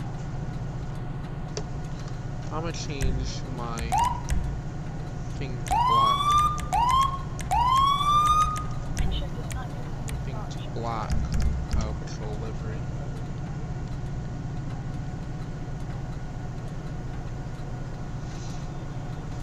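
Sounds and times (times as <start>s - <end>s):
low rumbling background: 0.0s - 19.4s
fire truck siren whooping: 3.8s - 4.4s, 5.7s - 8.8s.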